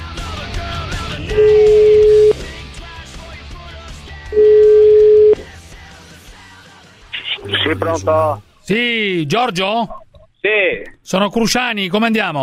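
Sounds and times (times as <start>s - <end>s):
ringback tones from a telephone call being placed: 1.3s - 2.4s, 4.3s - 5.4s
speech: 7.7s - 12.4s.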